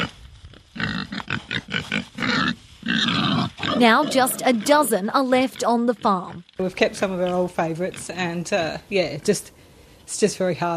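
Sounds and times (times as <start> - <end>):
Large Black and Berkshire pigs grunting and squealing on a farm in North Burnett: 0.8 - 6.4
speech: 3.8 - 10.7.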